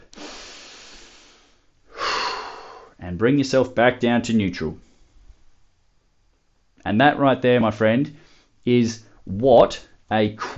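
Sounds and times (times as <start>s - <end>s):
person taking deep breaths while lying relaxed on a bench during strength training: 0.0s - 3.0s, 8.2s - 8.6s
speech: 3.1s - 4.9s, 6.9s - 10.5s.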